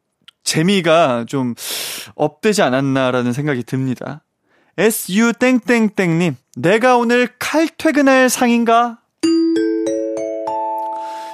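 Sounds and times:
speech: 0:00.5 - 0:04.2, 0:04.8 - 0:09.0
bright correct-answer chime of rising bell tones: 0:09.2 - 0:11.3.

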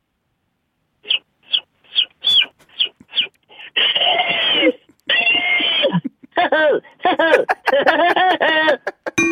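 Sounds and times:
person imitating mocking woodpecker-style call: 0:01.0 - 0:06.1
person imitating chick peeps: 0:01.0 - 0:06.9
laughter: 0:03.9 - 0:09.2.

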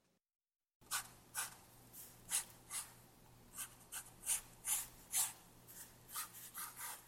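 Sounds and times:
faint steady hum: 0:00.8 - 0:07.0
pencil scratching and scribbling on paper: 0:02.3 - 0:07.0.

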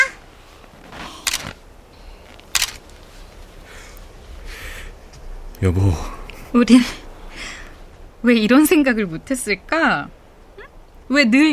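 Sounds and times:
quiet hiss: 0:00.0 - 0:11.5
camera shutter clicks as a child takes a photo: 0:01.2 - 0:01.6, 0:02.5 - 0:02.8
speech: 0:05.6 - 0:07.0, 0:08.2 - 0:10.2, 0:11.1 - 0:11.5.

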